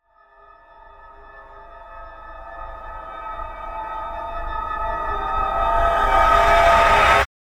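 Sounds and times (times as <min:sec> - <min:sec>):
granular riser: 0:03.0 - 0:07.3.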